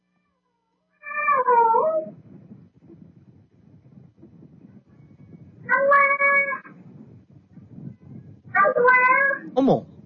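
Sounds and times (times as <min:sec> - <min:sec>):
ragdoll cat meowing in drawn-out bending calls: 0:01.0 - 0:02.1, 0:05.7 - 0:06.7, 0:08.6 - 0:09.5
steady low rumbling background: 0:01.2 - 0:10.0
speech: 0:09.7 - 0:09.9.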